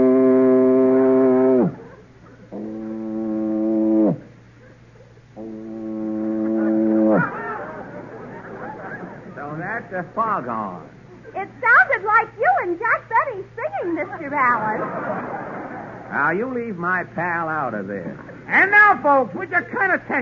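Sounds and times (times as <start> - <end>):
man's voice mimicking a foghorn with low droning blasts: 0.0 - 1.9, 2.5 - 4.3, 5.4 - 7.4
rough vocal noise: 0.0 - 4.3, 5.4 - 9.3
laughter: 6.4 - 10.2, 13.8 - 16.4
speech: 10.0 - 11.6, 12.2 - 15.4, 16.1 - 20.2.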